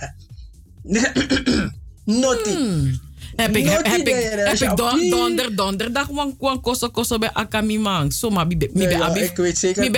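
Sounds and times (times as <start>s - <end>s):
person giving deliberate throat clearing: 0.0s - 0.2s, 0.9s - 1.8s
speech: 0.8s - 9.9s
person giving short voiced coughs: 0.9s - 1.8s.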